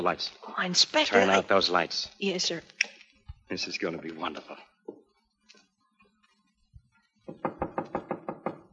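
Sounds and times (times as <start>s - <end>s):
speech: 0.0s - 2.8s, 3.5s - 4.7s
firm knocks on a door: 7.2s - 8.7s.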